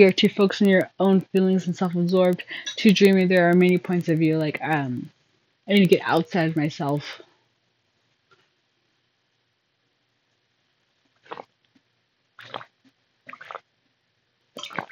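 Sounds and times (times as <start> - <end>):
speech: 0.0 - 7.2
sipping water: 12.4 - 12.7, 13.3 - 13.6, 14.6 - 14.9.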